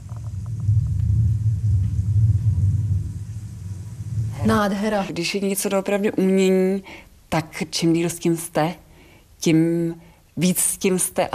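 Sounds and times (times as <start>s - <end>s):
faint higher ticks and patters: 0.0s - 3.5s
recorded thunderstorm rumble in an exhibition: 0.0s - 6.1s
speech: 4.4s - 8.8s, 9.4s - 11.3s.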